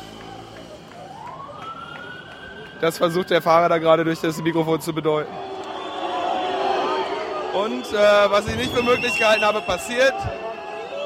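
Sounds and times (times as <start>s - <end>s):
ambulance siren in a street blocked by protester barricades: 0.0s - 11.0s
street noise: 0.0s - 11.0s
speech: 2.8s - 5.5s, 7.6s - 10.4s.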